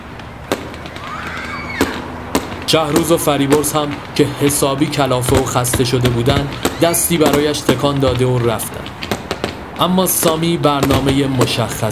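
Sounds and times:
city noise: 0.0s - 11.8s
firecracker bangs in the city: 0.0s - 11.8s
whistling rocket rising and falling: 0.2s - 4.6s, 6.2s - 7.5s
speech: 2.7s - 9.0s, 9.8s - 11.8s.

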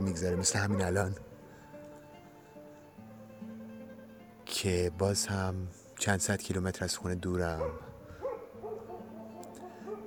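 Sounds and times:
faint dogs barking outdoors on a plain: 0.0s - 1.3s, 7.4s - 10.0s
speech: 0.1s - 1.3s, 4.6s - 7.9s.

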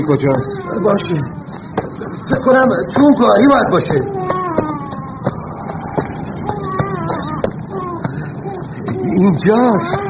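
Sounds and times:
speech: 0.0s - 1.4s, 2.3s - 4.2s, 9.2s - 10.0s
baby crying: 0.0s - 10.0s
low rumble: 4.1s - 8.1s.

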